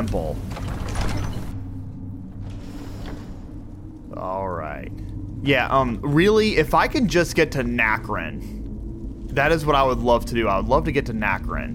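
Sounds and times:
speech: 0:00.0 - 0:00.6, 0:04.2 - 0:08.6, 0:09.3 - 0:11.7
big temple door mechanism grinding open in a video game: 0:00.4 - 0:03.8.

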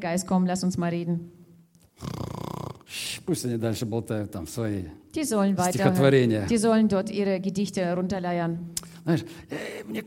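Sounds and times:
speech: 0:00.0 - 0:01.4, 0:02.0 - 0:02.2, 0:02.9 - 0:10.0
voice imitating a yawn with a creaky groan and breathy exhale: 0:02.0 - 0:03.0.

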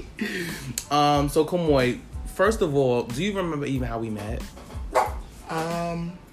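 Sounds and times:
speech: 0:00.2 - 0:04.6, 0:05.5 - 0:06.2
dog barking: 0:04.9 - 0:05.2.

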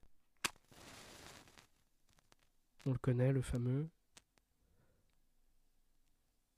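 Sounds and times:
match flaring and burning with soft rushing hiss: 0:00.4 - 0:01.7
match struck with a sharp scrape and snap: 0:00.4 - 0:02.5
speech: 0:02.8 - 0:04.0.

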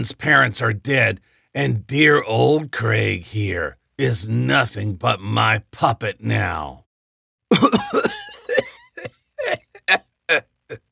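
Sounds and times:
speech: 0:00.0 - 0:06.8, 0:07.5 - 0:08.1, 0:09.4 - 0:10.8
person coughing: 0:07.5 - 0:10.8.

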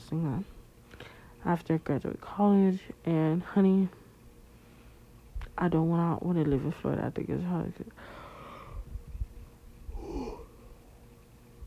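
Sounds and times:
speech: 0:00.1 - 0:04.0, 0:05.6 - 0:08.2
person yawning: 0:09.9 - 0:10.6.

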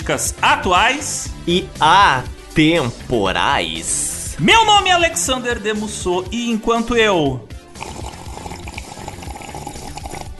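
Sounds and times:
speech: 0:00.1 - 0:08.0
iced Pepsi pouring into a glass with ice and lemon: 0:07.7 - 0:10.3.

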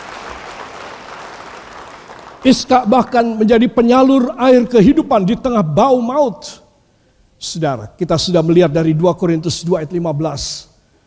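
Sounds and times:
audience clapping during a church sermon: 0:00.0 - 0:03.0
speech: 0:02.4 - 0:06.6, 0:07.4 - 0:10.7.

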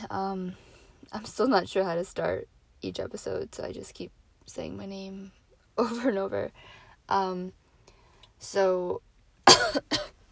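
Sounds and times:
speech: 0:00.1 - 0:07.6, 0:08.4 - 0:10.1
person clearing throat: 0:09.5 - 0:10.2
person coughing: 0:09.5 - 0:10.2.

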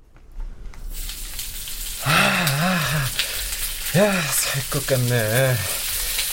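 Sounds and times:
hot water gushing into a bathtub: 0:00.9 - 0:06.3
speech: 0:03.9 - 0:05.8.

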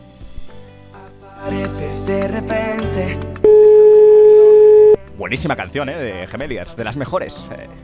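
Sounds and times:
speech: 0:01.5 - 0:03.4, 0:05.2 - 0:07.8
telephone ringing tone: 0:03.4 - 0:05.0.

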